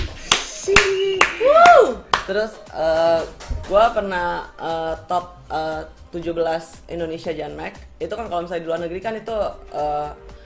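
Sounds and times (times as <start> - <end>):
people clapping hands: 0.0 - 3.8
speech: 2.3 - 10.3.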